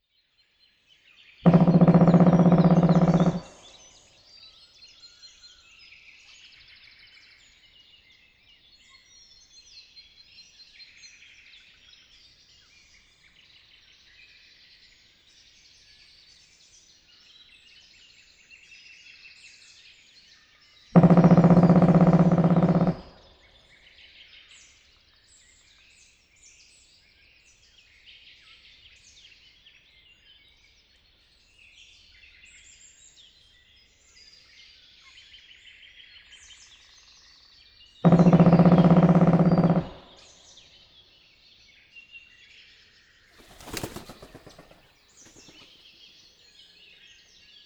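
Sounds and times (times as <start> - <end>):
black woodpecker: 1.5 - 5.6, 20.7 - 24.8, 36.4 - 41.2, 43.4 - 47.6.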